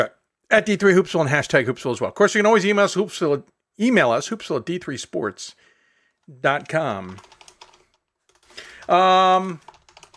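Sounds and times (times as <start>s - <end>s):
speech: 0.0s - 5.7s, 6.3s - 7.4s, 8.8s - 9.7s
typing on a computer keyboard: 7.1s - 10.1s.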